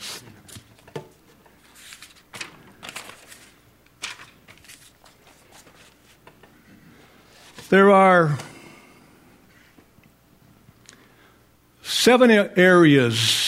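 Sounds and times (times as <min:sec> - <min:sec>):
sheets of paper notes shuffled and pages flipped: 0:01.6 - 0:06.2
speech: 0:07.7 - 0:08.4, 0:12.0 - 0:13.4.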